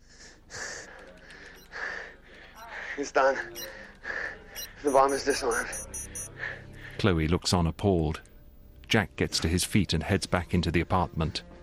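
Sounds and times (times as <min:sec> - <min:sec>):
heavy ragged breathing after exertion: 0:00.0 - 0:04.9, 0:05.8 - 0:07.1
speech: 0:03.0 - 0:03.8, 0:04.8 - 0:05.9, 0:07.0 - 0:08.3, 0:08.9 - 0:11.5.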